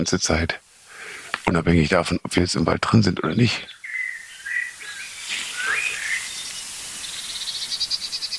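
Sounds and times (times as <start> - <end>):
speech: 0.0 - 0.6, 1.4 - 3.8
tits scolding with sharp alarm calls: 2.6 - 8.3
tits giving high chirps: 3.3 - 8.3.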